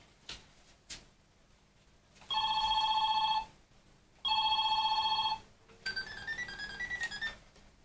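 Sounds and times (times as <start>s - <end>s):
telephone ringing in electronic bursts: 2.3s - 3.5s, 4.3s - 7.4s.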